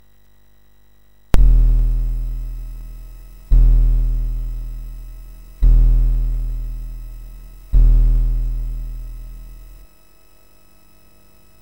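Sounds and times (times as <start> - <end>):
C64 SID 6581 chip noise with input tied to ground: 1.4 - 9.8.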